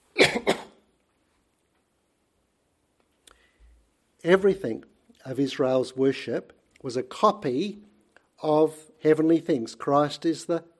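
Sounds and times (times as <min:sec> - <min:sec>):
throat clearing: 0:00.2 - 0:00.8
faint click: 0:03.0 - 0:03.8
speech: 0:04.2 - 0:10.7.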